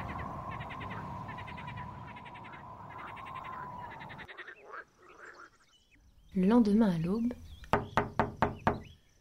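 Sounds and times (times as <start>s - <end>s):
speech: 6.4s - 7.5s
firm knocks on a wooden door: 7.7s - 8.9s.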